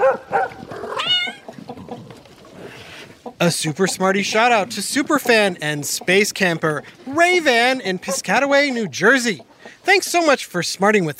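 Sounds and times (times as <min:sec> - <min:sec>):
dogs barking and yelping: 0:00.0 - 0:02.9
cats meowing: 0:00.8 - 0:01.6
speech: 0:03.4 - 0:11.1.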